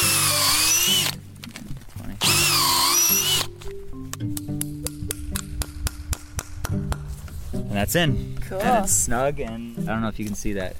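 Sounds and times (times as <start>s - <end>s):
power drill boring a hole into a tree in a sugar bush for sap: 0.0s - 1.2s, 2.2s - 3.5s
sharp taps and knocks: 4.2s - 7.4s
speech: 7.8s - 10.7s.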